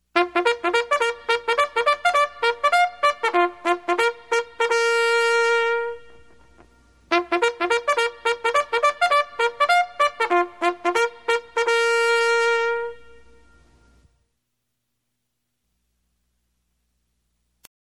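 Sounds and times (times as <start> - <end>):
bugle call ringtone: 0.2 - 13.9.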